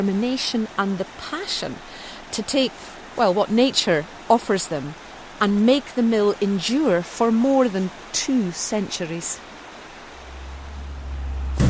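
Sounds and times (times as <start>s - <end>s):
speech: 0.0s - 9.5s
steady low mechanical hum: 0.0s - 11.6s
heavy steel door slamming shut: 11.5s - 11.6s.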